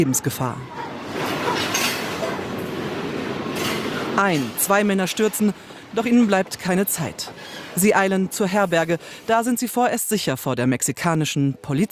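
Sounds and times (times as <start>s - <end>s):
speech: 0.0s - 0.9s, 4.2s - 11.9s
freight train rolling on rails: 0.0s - 9.5s.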